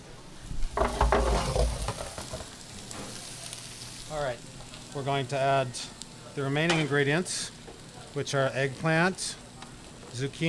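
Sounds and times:
onions sizzling in a pan: 0.3 - 10.4
stirring onions in a pan, scraping and clattering: 0.8 - 2.6
speech: 4.2 - 7.6, 8.2 - 9.4, 10.1 - 10.4.

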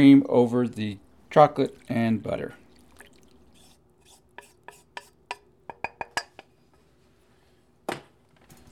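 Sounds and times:
speech: 0.0 - 2.6
whisk clinking against a bowl while mixing hot cream, chocolate and butter: 4.0 - 6.4.

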